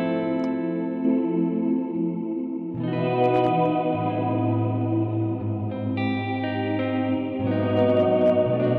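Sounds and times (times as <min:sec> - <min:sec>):
sustained instrument chords with choir-like chorale reverb effect: 0:00.0 - 0:08.7.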